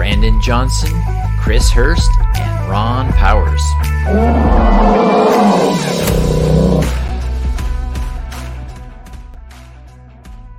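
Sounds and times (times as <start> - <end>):
speech: 0.2 - 6.2
bear roaring loudly and low: 4.1 - 7.1.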